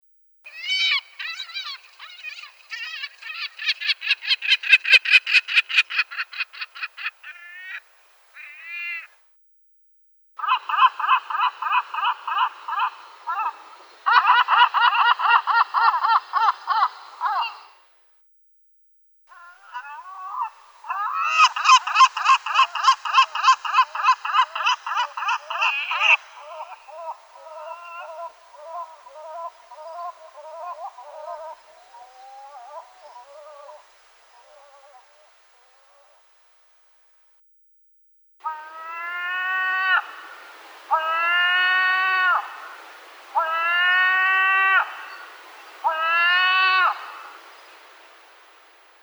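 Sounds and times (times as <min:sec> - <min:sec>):
eastern lesser black-backed gull calling: 0:00.5 - 0:09.2, 0:10.4 - 0:17.9, 0:19.3 - 0:36.5, 0:38.4 - 0:49.0
laughter: 0:10.4 - 0:17.7, 0:19.4 - 0:33.8.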